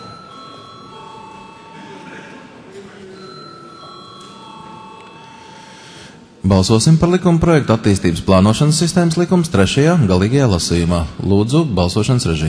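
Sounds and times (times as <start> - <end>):
electric bell ringing in a parliament chamber before a vote: 0.0 - 2.5, 3.2 - 6.2
low murmur of voices and chamber noise: 0.0 - 12.4
speech: 6.4 - 12.4.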